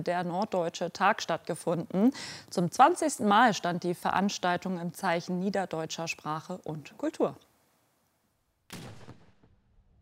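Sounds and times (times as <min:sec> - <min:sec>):
speech: 0:00.0 - 0:07.5
cannon fire over a fortress during a festival: 0:08.7 - 0:10.0.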